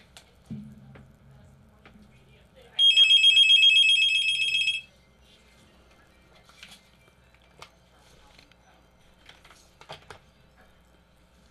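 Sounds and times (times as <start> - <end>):
telephone ringing on a radio call-in line: 2.8 - 5.0.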